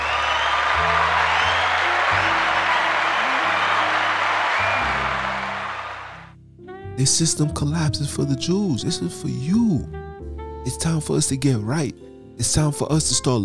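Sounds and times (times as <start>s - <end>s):
crowd applauding: 0.0s - 6.3s
speech: 7.0s - 10.0s, 10.6s - 13.4s.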